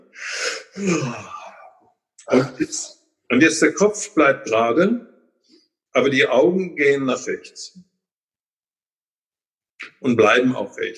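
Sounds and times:
person yawning: 0.2s - 2.5s
speech: 0.8s - 1.4s, 2.3s - 5.1s, 6.0s - 7.9s, 10.0s - 10.9s.

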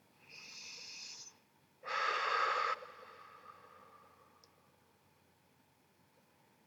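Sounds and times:
deep breathing during a relaxation exercise: 0.3s - 4.5s.

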